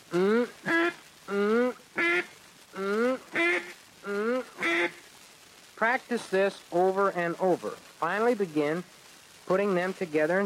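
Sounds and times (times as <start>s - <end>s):
duck call blown to imitate a duck's quacking: 0.6s - 5.0s
speech: 5.9s - 10.4s.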